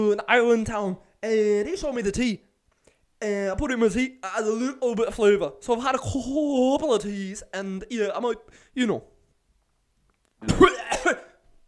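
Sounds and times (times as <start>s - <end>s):
speech: 0.0s - 2.5s, 3.2s - 9.1s, 10.4s - 11.3s
person coughing close to the microphone: 10.4s - 11.4s.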